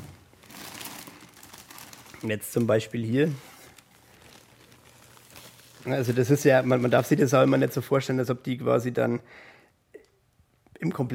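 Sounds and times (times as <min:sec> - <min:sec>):
plastic bags holding human bones rustling as they are opened on a desk: 0:00.0 - 0:07.9
speech: 0:02.2 - 0:03.5, 0:05.8 - 0:09.6, 0:10.8 - 0:11.1.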